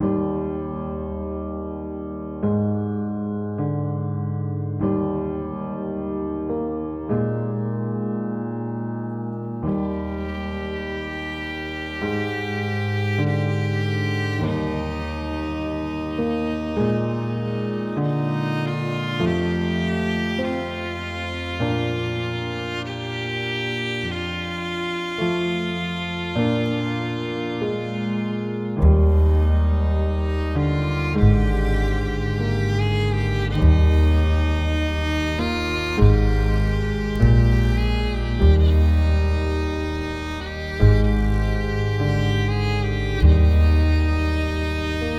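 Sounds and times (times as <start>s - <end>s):
soft piano: 0.0s - 45.1s
violins: 9.6s - 45.1s.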